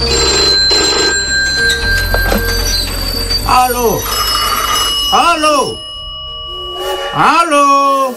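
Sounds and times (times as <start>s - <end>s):
several telephone bells ringing: 0.0s - 7.2s
speech: 3.6s - 4.1s, 5.1s - 5.8s, 7.2s - 8.1s.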